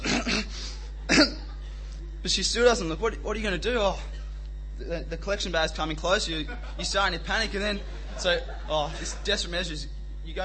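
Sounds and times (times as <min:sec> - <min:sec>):
person coughing deliberately: 0:00.0 - 0:01.6
laughter: 0:00.3 - 0:02.2, 0:06.2 - 0:09.8
speech: 0:02.2 - 0:04.2, 0:04.8 - 0:10.4.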